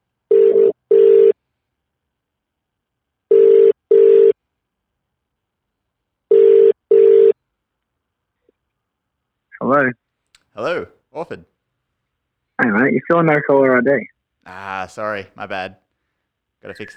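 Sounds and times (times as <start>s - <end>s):
phone ringing tone heard down the line: 0.3s - 1.4s, 3.3s - 4.4s, 6.3s - 7.4s
speech: 9.7s - 10.0s, 10.6s - 11.5s, 12.6s - 15.8s, 16.6s - 16.9s.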